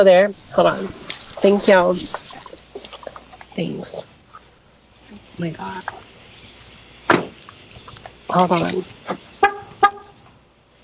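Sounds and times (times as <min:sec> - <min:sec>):
speech: 0:00.0 - 0:02.3, 0:03.6 - 0:04.1, 0:05.4 - 0:06.0, 0:08.3 - 0:09.3
car horn honks: 0:09.4 - 0:10.2.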